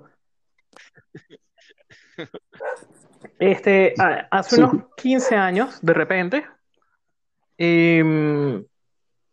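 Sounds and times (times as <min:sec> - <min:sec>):
speech: 0:02.2 - 0:06.5, 0:07.6 - 0:08.7
dog barking: 0:02.6 - 0:03.0, 0:05.1 - 0:05.7.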